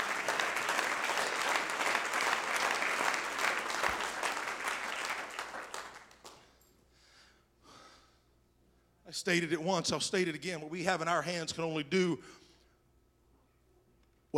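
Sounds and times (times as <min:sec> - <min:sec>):
church audience clapping hands: 0:00.0 - 0:06.5
speech: 0:09.2 - 0:12.4.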